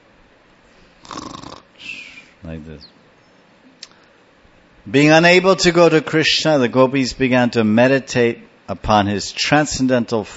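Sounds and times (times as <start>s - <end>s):
man imitating a snore with his voice: 1.0s - 1.7s
speech: 2.4s - 3.0s, 4.8s - 10.3s.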